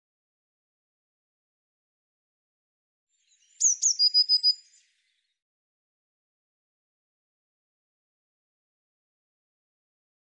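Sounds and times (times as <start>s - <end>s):
Eurasian blue tit calling: 3.4s - 4.8s.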